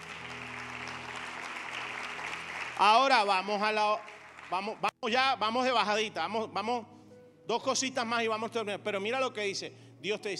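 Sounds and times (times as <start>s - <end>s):
church congregation clapping during a sermon: 0.0s - 5.0s
speech: 2.8s - 6.9s, 7.5s - 10.3s.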